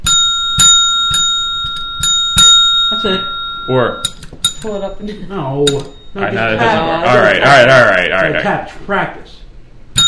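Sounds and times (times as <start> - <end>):
small bell struck as a gong: 0.0 - 4.9, 5.6 - 6.2
speech: 3.0 - 9.4.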